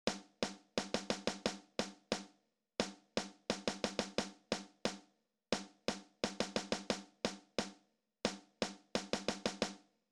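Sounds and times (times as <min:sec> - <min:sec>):
snare drums: 0:00.1 - 0:09.9.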